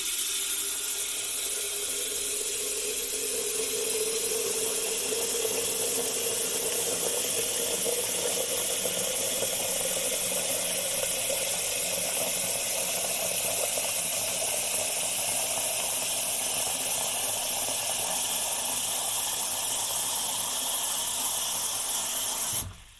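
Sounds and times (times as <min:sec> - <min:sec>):
tap water filling an electric kettle: 0:00.0 - 0:22.9.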